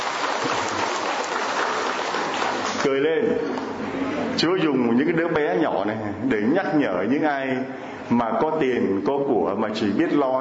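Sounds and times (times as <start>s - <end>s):
gathering applauding for a small child: 0.0s - 3.0s
speech: 2.8s - 10.3s.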